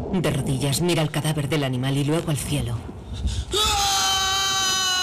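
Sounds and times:
speech: 0:00.1 - 0:03.3
loud piercing human scream: 0:03.5 - 0:05.0.

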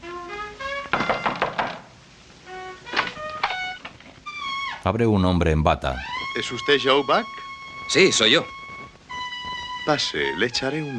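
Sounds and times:
soft dull knocking on a door: 0:00.9 - 0:01.9
sustained tonal musical notes: 0:02.4 - 0:10.9
speech: 0:04.8 - 0:08.6, 0:09.9 - 0:10.9.

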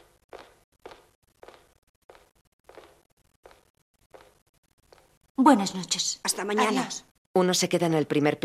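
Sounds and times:
footsteps climbing stairs inside the entrance of an apartment building: 0:00.0 - 0:05.2
speech: 0:05.4 - 0:08.4.

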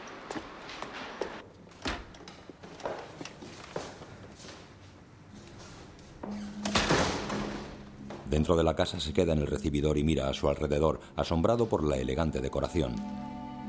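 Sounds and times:
fairly footsteps: 0:00.0 - 0:06.5
door clattering open with a sharp knock: 0:01.8 - 0:02.5, 0:06.4 - 0:07.8
speech: 0:08.3 - 0:13.3.

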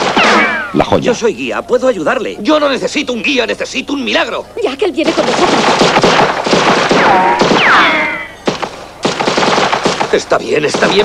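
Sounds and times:
gunfire bursts in a town street: 0:00.0 - 0:00.8, 0:05.0 - 0:11.0
passing bullets whistling: 0:00.0 - 0:00.8, 0:06.9 - 0:08.5
sharp gunshot cracks: 0:00.0 - 0:00.9, 0:05.3 - 0:11.0
speech: 0:00.7 - 0:06.3, 0:07.1 - 0:08.0, 0:10.1 - 0:11.0.

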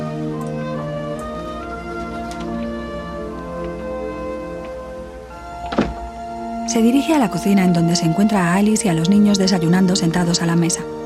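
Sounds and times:
steady sustained musical tones: 0:00.0 - 0:11.0
door opening as a man enters: 0:00.3 - 0:02.7, 0:05.4 - 0:06.4
short knock-like thunk: 0:05.6 - 0:06.2
speech: 0:06.7 - 0:11.0.

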